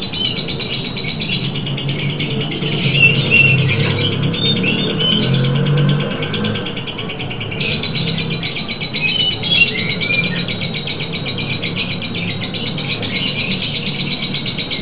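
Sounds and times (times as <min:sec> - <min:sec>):
lovebird chattering: 0:00.0 - 0:14.7.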